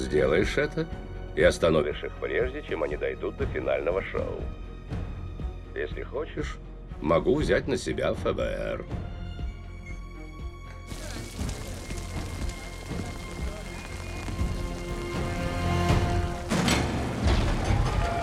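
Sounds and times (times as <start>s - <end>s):
speech: 0.1s - 5.0s, 5.8s - 9.1s
steady rain falling: 10.9s - 18.2s.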